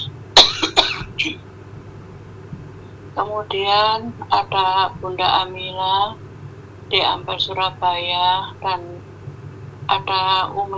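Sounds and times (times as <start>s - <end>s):
person coughing: 0.4s - 1.4s
speech: 1.2s - 1.5s, 3.2s - 6.2s, 6.9s - 9.1s, 9.9s - 10.7s.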